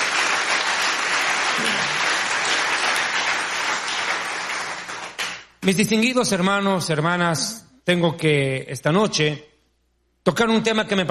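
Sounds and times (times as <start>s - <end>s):
church audience applauding loudly: 0.0s - 5.6s
speech: 5.6s - 9.5s, 10.2s - 11.0s.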